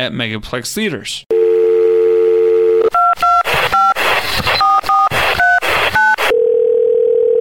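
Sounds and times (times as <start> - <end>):
speech: 0.0 - 1.3
telephone dial tone: 1.3 - 4.0, 4.6 - 7.3
touch-tone beeps dialing a movie theater's phone line: 1.7 - 7.3.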